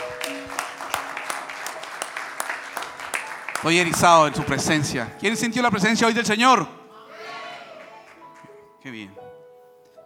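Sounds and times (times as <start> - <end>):
congregation applauding: 0.0 - 5.0, 7.4 - 8.7
speech: 3.6 - 6.8, 8.9 - 9.2.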